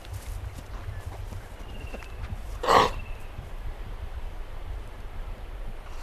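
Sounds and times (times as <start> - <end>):
low wind rumble: 0.0 - 6.0
eastern grey kangaroo snort: 2.6 - 3.0.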